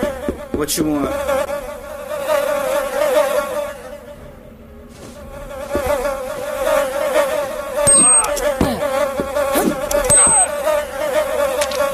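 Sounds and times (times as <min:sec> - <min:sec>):
dense continuous buzzing: 0:00.0 - 0:11.9
speech: 0:00.6 - 0:01.5
brief high-pitched electronic blips: 0:07.9 - 0:08.4, 0:10.1 - 0:10.5.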